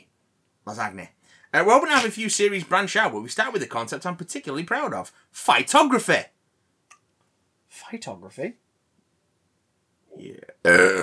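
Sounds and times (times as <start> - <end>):
speech: 0.7 - 6.3, 7.7 - 8.6, 10.2 - 11.0
low croaky burp: 10.4 - 11.0.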